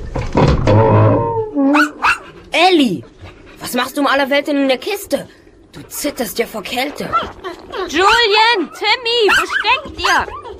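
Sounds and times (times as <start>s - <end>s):
dog whining and yelping: 1.2s - 2.4s, 7.1s - 10.5s
speech: 2.7s - 10.4s.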